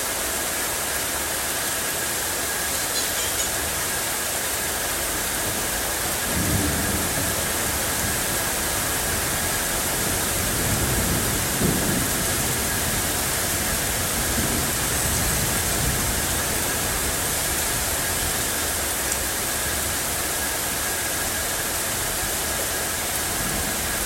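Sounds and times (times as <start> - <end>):
steady dense rain hissing: 0.0 - 24.0
low soft rumbles of thunder: 5.5 - 18.3.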